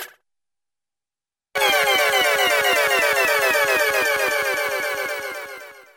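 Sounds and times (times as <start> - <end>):
multiple ascending tones: 1.6 - 5.8.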